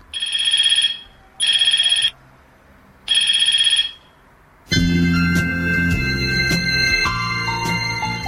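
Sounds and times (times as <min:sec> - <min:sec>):
mobile phone ringtone: 0:00.2 - 0:02.2, 0:03.1 - 0:08.2
music: 0:04.7 - 0:08.2.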